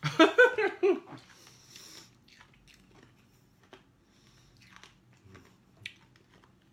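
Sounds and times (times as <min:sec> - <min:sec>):
person laughing: 0:00.0 - 0:01.2
crunching and chewing hard sherbet fruit sweets: 0:01.1 - 0:06.7.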